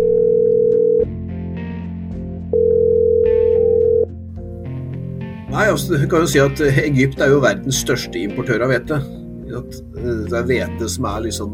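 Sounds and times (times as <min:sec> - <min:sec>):
telephone ringback tone while placing a call: 0:00.0 - 0:01.1, 0:02.5 - 0:04.1
speech: 0:05.6 - 0:11.5.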